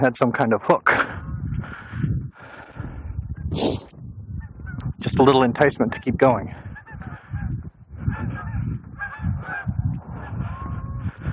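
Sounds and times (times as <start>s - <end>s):
speech: 0.0s - 1.8s, 3.5s - 3.9s, 5.0s - 6.7s
flock of geese honking: 5.9s - 7.5s, 8.1s - 11.1s.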